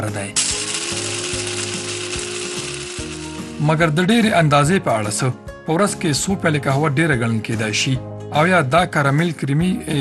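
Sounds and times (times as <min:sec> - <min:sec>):
speech: 0:00.0 - 0:01.4, 0:03.6 - 0:09.9
coffee machine whirring with a grinding texture: 0:00.4 - 0:03.8.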